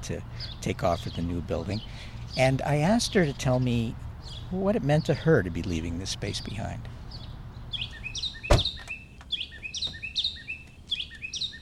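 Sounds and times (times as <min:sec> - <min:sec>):
speech: 0:00.0 - 0:07.0
mockingbird singing in a parking lot: 0:00.0 - 0:11.5
sharp knock: 0:08.5 - 0:08.8.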